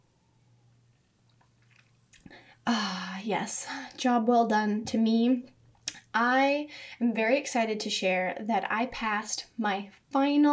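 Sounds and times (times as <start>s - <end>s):
faint steady low hum: 0.0s - 10.5s
mouth sipping and swallowing champagne: 1.3s - 2.5s
speech: 2.6s - 10.5s.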